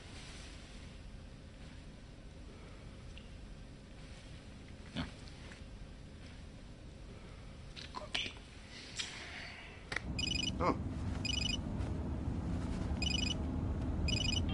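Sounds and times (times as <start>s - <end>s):
constant low hum: 0.0s - 14.5s
telephone ringing in trilling bursts: 10.2s - 10.6s, 11.2s - 11.6s, 13.0s - 13.4s, 14.1s - 14.5s.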